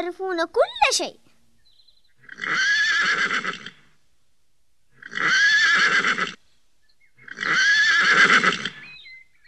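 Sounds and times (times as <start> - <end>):
speech: 0.0 - 1.3, 2.4 - 3.7
horse whinnying: 2.2 - 3.8, 5.0 - 6.4, 7.2 - 8.8.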